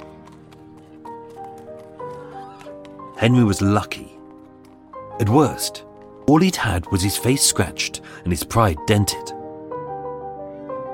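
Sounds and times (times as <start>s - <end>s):
hooves of a horse-drawn cab clip-clopping: 0.0s - 7.7s
speech: 3.2s - 4.2s, 5.2s - 9.4s.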